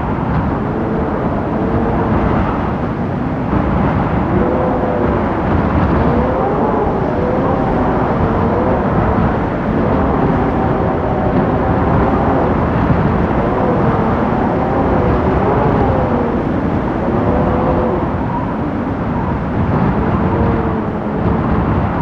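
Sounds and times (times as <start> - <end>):
wind at the top of a chasm: 0.0 - 22.0.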